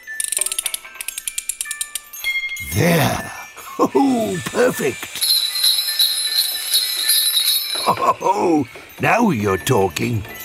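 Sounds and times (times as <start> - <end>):
sleigh bells jingling: 2.1 - 10.4
speech: 2.8 - 5.3, 8.0 - 10.4.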